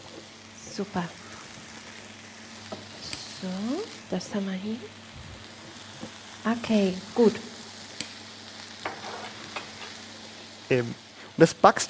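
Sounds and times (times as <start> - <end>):
onions sizzling in a frying pan: 0.0 - 11.8
speech: 0.8 - 1.2, 3.4 - 5.0, 6.4 - 7.5, 10.7 - 11.8
scrapes and clinks of stirring: 8.8 - 10.0.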